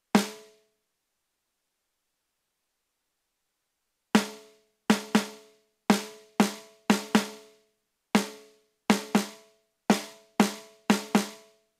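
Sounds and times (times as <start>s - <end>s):
acoustic snare drum: 0.2s - 0.5s, 4.2s - 7.5s, 8.2s - 11.5s.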